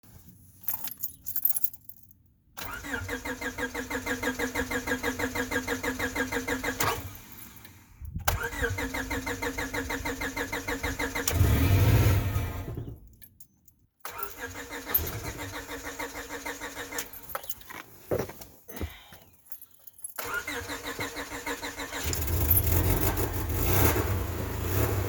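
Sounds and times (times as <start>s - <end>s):
98 Accord engine failing on a cold start: 2.6s - 13.1s, 14.1s - 17.3s, 20.2s - 24.9s.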